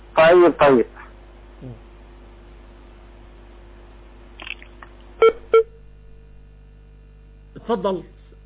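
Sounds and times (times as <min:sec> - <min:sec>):
faint steady phone line hum: 0:00.0 - 0:08.4
speech: 0:00.2 - 0:01.0, 0:01.6 - 0:01.8, 0:07.7 - 0:08.2
short loud electronic beeps from a disconnecting call: 0:05.2 - 0:05.8.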